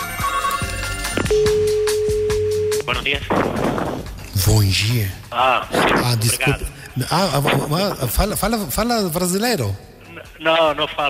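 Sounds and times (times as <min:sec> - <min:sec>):
telephone ringing in electronic tones: 0:00.4 - 0:03.1
speech: 0:02.9 - 0:11.0.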